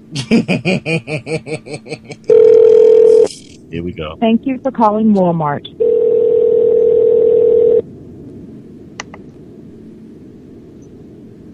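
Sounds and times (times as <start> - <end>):
laughter: 0.1 - 2.3
speech: 0.1 - 2.9, 3.8 - 5.8
outgoing phone call ringing tone: 2.3 - 3.3, 5.8 - 7.8.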